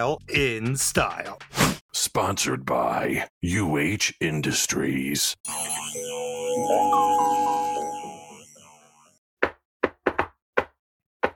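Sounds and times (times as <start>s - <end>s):
speech: 0.0s - 7.4s
musical tone: 5.5s - 9.1s
sharp loud knocks on a door: 9.4s - 11.3s.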